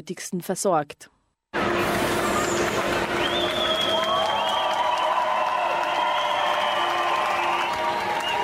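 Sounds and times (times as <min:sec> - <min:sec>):
speech: 0:00.0 - 0:01.8
crowd applauding arriving refugees at train station: 0:01.6 - 0:08.4
whistles: 0:02.4 - 0:08.4.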